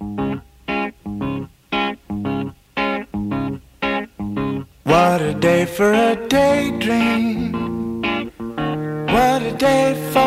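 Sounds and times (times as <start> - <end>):
record played slowed by a half-crown coin on a record player: 0.0 - 10.2
speech: 4.9 - 7.6, 9.2 - 10.2.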